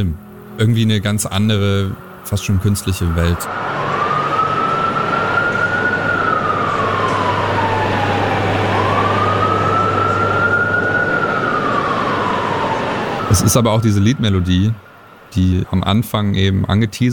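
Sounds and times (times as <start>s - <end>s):
speech: 0.0s - 3.8s, 13.4s - 17.1s
steady low engine rumble: 0.0s - 16.5s
city emergency siren wailing in a slow cycle: 2.3s - 15.4s.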